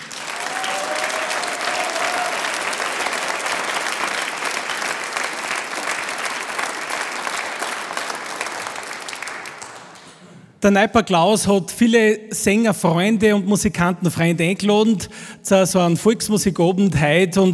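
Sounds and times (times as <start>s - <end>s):
large audience applause at a folk music evening: 0.0s - 10.2s
speech: 10.6s - 17.5s.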